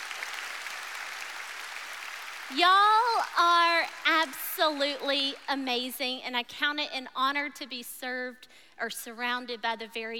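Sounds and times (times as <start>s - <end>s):
church congregation applauding at a morning service: 0.0s - 5.5s
speech: 2.5s - 10.1s.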